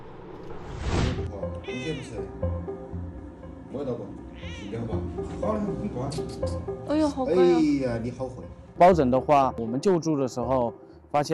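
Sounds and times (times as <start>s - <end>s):
Ragdoll cat meowing: 1.6s - 2.2s, 4.3s - 4.9s
speech: 1.8s - 2.5s, 3.8s - 11.3s.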